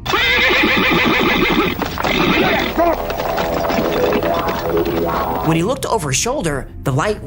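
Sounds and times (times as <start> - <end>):
horse whinnying: 0.0 - 5.5
speech: 5.0 - 7.2.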